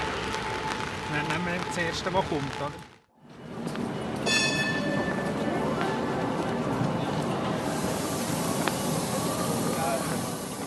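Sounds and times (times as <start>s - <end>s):
line 3 tram rumbling along on a rainy day: 0.0s - 10.6s
brief high ringing tone: 4.2s - 5.4s.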